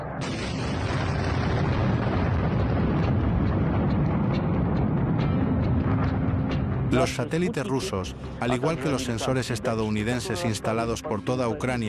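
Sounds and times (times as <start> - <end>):
large explosions at an ammunition depot rumbling in a continuous roar: 0.0 - 7.1
speech: 7.0 - 11.8.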